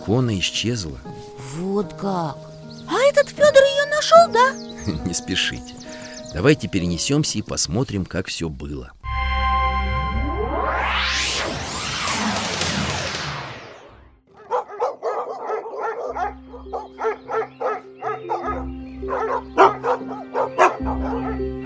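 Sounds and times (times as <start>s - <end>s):
speech: 0.0s - 9.0s
loud sweeping whoosh: 9.8s - 14.1s
hunting dogs barking in forest: 14.3s - 21.6s.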